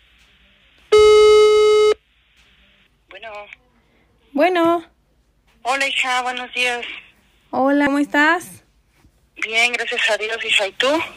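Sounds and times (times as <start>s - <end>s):
flat electronic telephone tone heard through the line: 0.9s - 2.0s
speech: 3.3s - 3.6s, 4.3s - 4.9s, 5.6s - 8.6s, 9.4s - 11.1s.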